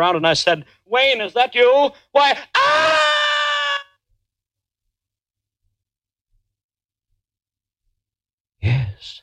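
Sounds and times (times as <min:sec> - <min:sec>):
speech: 0:00.0 - 0:03.0
man screaming loudly: 0:02.2 - 0:04.0.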